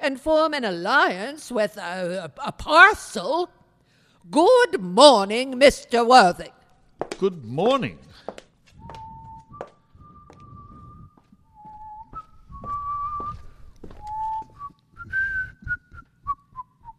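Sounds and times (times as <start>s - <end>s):
speech: 0.0s - 3.6s, 4.2s - 8.2s
person whistling a wandering tune: 8.8s - 16.9s.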